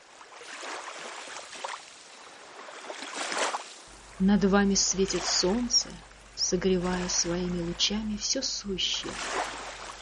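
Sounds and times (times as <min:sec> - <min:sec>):
sea waves: 0:00.0 - 0:10.0
speech: 0:04.2 - 0:09.5.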